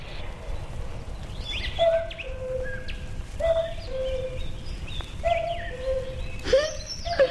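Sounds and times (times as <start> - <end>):
low rumble of outdoor forest ambience: 0.0 - 7.2
cuckoo two-note falling call in a forest: 1.5 - 7.2.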